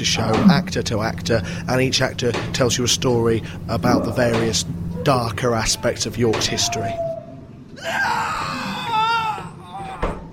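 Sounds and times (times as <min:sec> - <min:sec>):
speech: 0:00.0 - 0:07.1, 0:07.8 - 0:08.3
several people screaming at a horror attraction: 0:05.5 - 0:10.3.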